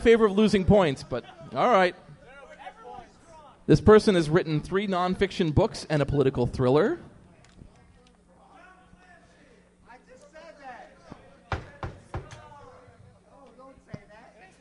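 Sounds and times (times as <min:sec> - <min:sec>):
speech: 0:00.0 - 0:02.0, 0:03.7 - 0:07.1
knocking on a hard surface to buzz in: 0:11.5 - 0:12.4.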